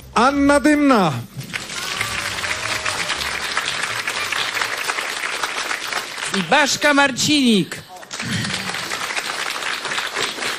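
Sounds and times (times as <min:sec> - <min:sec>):
speech: 0:00.2 - 0:01.4, 0:06.3 - 0:08.4
audience applauding in a festival meeting tent in Szklarska Poręba: 0:01.4 - 0:07.1, 0:07.8 - 0:10.5.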